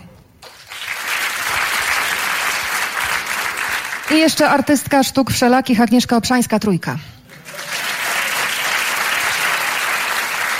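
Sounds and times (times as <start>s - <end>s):
audience applause at a jury announcement: 0.4s - 4.3s, 7.3s - 10.5s
speech: 4.1s - 7.1s.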